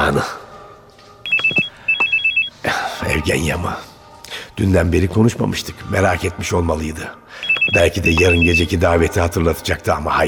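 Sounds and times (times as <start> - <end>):
speech: 0.1 - 0.4, 3.2 - 3.9, 4.6 - 10.2
mobile phone ringing with electronic trilling tones: 1.2 - 2.6, 7.4 - 8.8.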